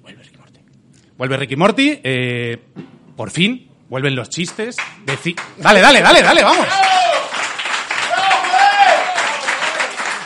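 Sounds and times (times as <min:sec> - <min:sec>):
speech: 0:01.2 - 0:07.0
crowd applauding: 0:04.5 - 0:10.2
voices cheering: 0:05.9 - 0:10.2.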